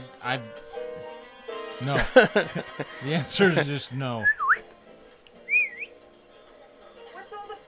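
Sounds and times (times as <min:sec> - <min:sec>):
speech: 0:00.2 - 0:00.7, 0:01.8 - 0:04.6
laughter: 0:01.8 - 0:04.2
person trying to whistle: 0:04.2 - 0:04.6, 0:05.5 - 0:05.9.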